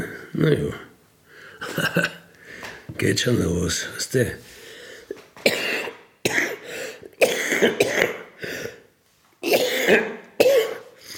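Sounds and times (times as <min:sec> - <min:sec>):
speech: 0:00.3 - 0:00.9, 0:01.7 - 0:02.2, 0:02.9 - 0:04.5, 0:07.6 - 0:08.2
person coughing: 0:05.1 - 0:08.8, 0:09.4 - 0:11.1.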